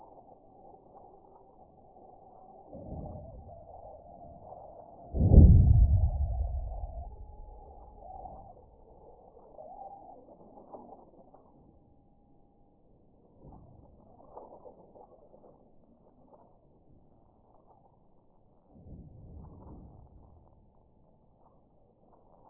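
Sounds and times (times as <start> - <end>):
sonified raw seismograph data of seismic events at San Casciano: 5.2 - 8.6.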